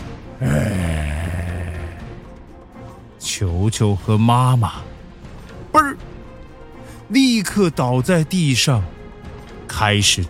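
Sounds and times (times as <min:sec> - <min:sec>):
speech: 0:00.4 - 0:01.0, 0:03.2 - 0:04.9, 0:07.1 - 0:09.0, 0:09.7 - 0:10.2
big bear roaring: 0:00.4 - 0:02.2.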